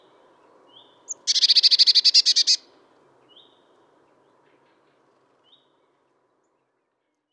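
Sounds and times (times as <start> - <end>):
Cyanistes caeruleus Eurasian blue tit call: 1.1 - 2.6.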